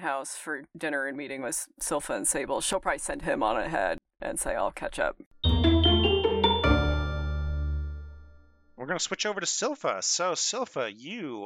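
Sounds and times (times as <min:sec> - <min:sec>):
speech: 0:00.0 - 0:05.3, 0:08.8 - 0:11.4
doorbell ding-dong chime: 0:05.4 - 0:08.6.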